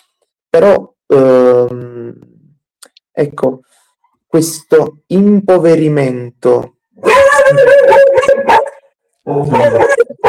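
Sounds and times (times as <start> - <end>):
speech: 0.6 - 2.4, 3.2 - 7.7, 9.3 - 10.1
dog howling and barking on a landing: 7.0 - 10.2.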